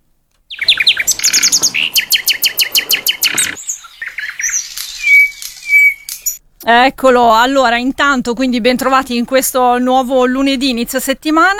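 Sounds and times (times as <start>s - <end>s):
nightingale singing chirps, trills and whistled notes: 0.4s - 6.5s
speech: 6.7s - 11.5s.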